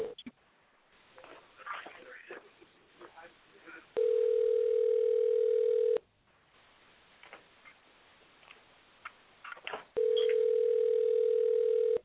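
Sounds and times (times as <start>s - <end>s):
people talking: 1.2s - 4.0s
outgoing phone call ringback tone: 4.0s - 6.0s, 10.0s - 12.0s.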